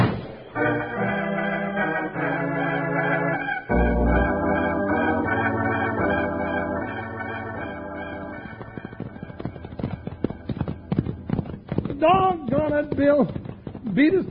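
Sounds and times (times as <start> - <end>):
musical passage: 0.5 - 11.0
horses galloping with loud clip-clopping hooves: 5.8 - 14.2
speech: 14.0 - 14.2.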